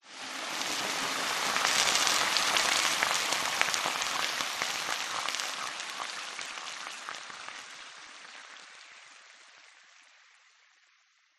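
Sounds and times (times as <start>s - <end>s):
water hitting hot metal sizzling: 0.1s - 10.6s
water bubbling: 0.4s - 8.8s.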